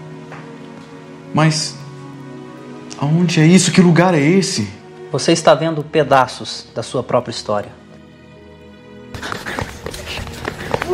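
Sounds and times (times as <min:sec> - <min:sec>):
speech: 0:01.3 - 0:01.8, 0:03.0 - 0:07.8
horse galloping hoofbeats: 0:09.2 - 0:10.9.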